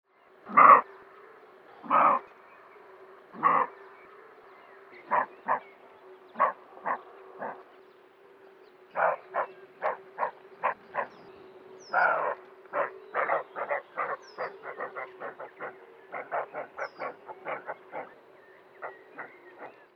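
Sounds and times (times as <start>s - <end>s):
roebuck alarm barking: 0.4s - 1.0s, 1.8s - 2.3s, 3.3s - 3.8s, 5.0s - 7.7s, 8.9s - 11.2s, 11.8s - 18.2s.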